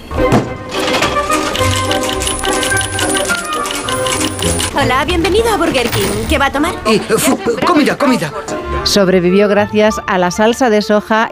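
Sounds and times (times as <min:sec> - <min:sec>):
coins clinking and dropping: 0:00.7 - 0:04.8, 0:05.8 - 0:06.3
speech: 0:04.8 - 0:11.2.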